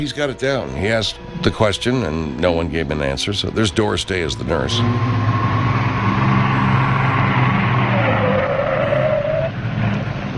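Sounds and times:
speech: 0.0s - 5.4s
stolen Jaguar car engine roaring under heavy load, driven hard: 3.4s - 10.3s.

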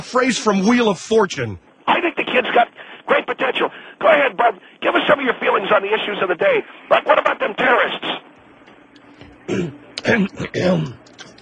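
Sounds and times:
speech: 0.0s - 8.3s, 9.5s - 11.0s
man clearing throat: 9.5s - 11.0s.

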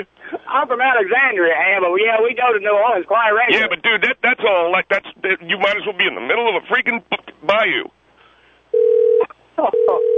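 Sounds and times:
speech: 0.0s - 8.0s, 9.6s - 10.1s
telephone ringing with two steady electronic tones: 8.8s - 10.1s.

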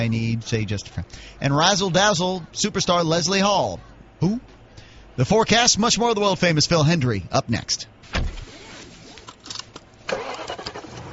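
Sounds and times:
speech: 0.0s - 4.6s, 5.2s - 8.4s
BMW 3 Series car engine starting: 8.3s - 11.1s.

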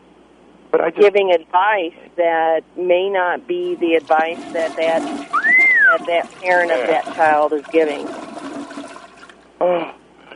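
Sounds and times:
speech: 0.7s - 8.3s, 9.6s - 10.0s
toilet flushing with rushing water: 3.5s - 9.5s.

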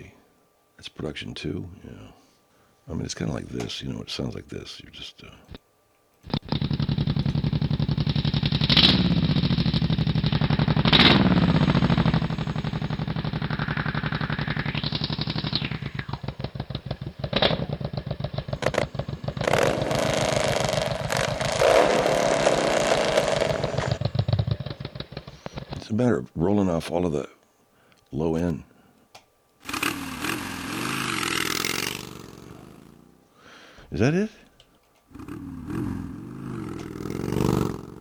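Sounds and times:
speech: 0.9s - 2.2s, 2.9s - 5.6s, 26.0s - 27.4s, 28.1s - 28.7s, 33.9s - 34.4s
motorcycle engine roaring: 6.3s - 25.9s, 29.6s - 33.3s, 35.1s - 37.9s.

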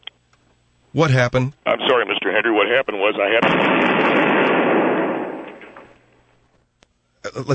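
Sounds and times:
speech: 0.9s - 4.7s, 7.4s - 7.5s
loud booming explosion: 3.4s - 6.0s.

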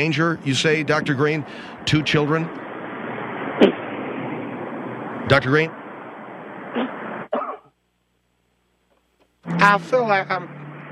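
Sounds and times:
speech: 0.0s - 2.6s, 5.3s - 5.8s, 9.6s - 10.8s
harsh raspy coughing: 6.8s - 7.7s.

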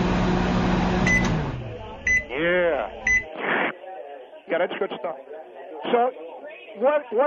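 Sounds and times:
microwave oven whirring hum heating food: 0.0s - 3.0s
sharp electronic beeps: 2.0s - 2.4s, 3.0s - 3.3s
speech: 4.5s - 6.2s, 6.8s - 7.2s.

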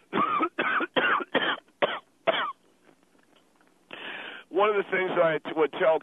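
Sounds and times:
harsh coughing after smoking a bowl of pot: 0.1s - 2.6s
speech: 4.6s - 6.0s.

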